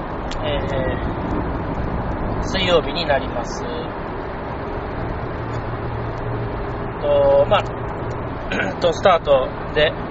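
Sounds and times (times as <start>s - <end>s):
road noise inside a moving car: 0.0s - 10.0s
speech: 0.4s - 1.5s, 2.4s - 4.1s, 7.0s - 7.8s, 8.5s - 10.0s.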